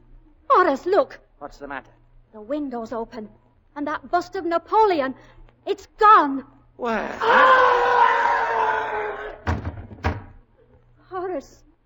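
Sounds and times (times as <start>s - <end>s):
speech: 0.6s - 8.0s, 11.4s - 11.7s
heavy thuds of a body against a front door: 9.4s - 10.4s.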